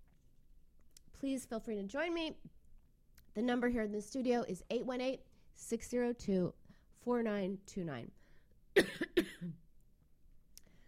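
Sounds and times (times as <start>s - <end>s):
speech: 1.2s - 2.6s, 3.4s - 8.2s, 8.8s - 9.6s
hoarse coughing fit in a studio: 8.8s - 9.6s.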